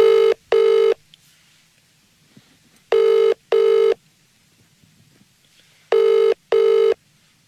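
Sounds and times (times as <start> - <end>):
telephone double-pulse ring-ring over a phone line: 0.0 - 1.0, 2.9 - 4.0, 5.9 - 7.4.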